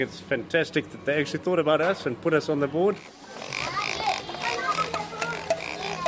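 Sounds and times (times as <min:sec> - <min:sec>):
speech: 0:00.0 - 0:03.7
toy pig giving squeaky electronic oinks: 0:03.4 - 0:06.0.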